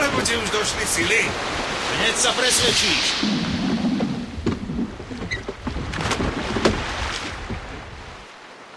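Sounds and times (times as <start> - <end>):
speech: 0.3 - 3.6
sea water washing and sloshing: 2.6 - 8.6
wooden boat scraping and knocking: 3.4 - 7.9.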